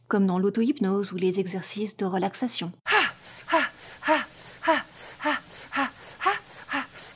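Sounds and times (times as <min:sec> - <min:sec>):
speech: 0:00.1 - 0:04.2
rapid rhythmic heavy breathing with a voiced moan on each breath: 0:02.9 - 0:07.1.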